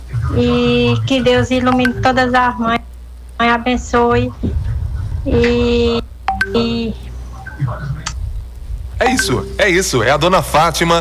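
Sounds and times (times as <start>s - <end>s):
low hum: 0.0s - 10.9s
speech: 0.3s - 2.8s, 3.4s - 4.6s, 5.2s - 7.0s, 9.0s - 10.9s
phone incoming message notification beeps: 1.7s - 2.3s, 6.3s - 7.6s, 9.1s - 9.7s.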